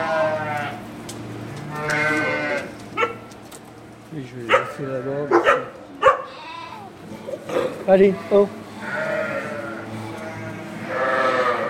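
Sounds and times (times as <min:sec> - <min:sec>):
flock of ewes bleating: 0:00.0 - 0:00.8, 0:01.7 - 0:02.8, 0:04.5 - 0:05.4, 0:06.1 - 0:11.6
speech: 0:04.4 - 0:05.3, 0:07.9 - 0:08.6.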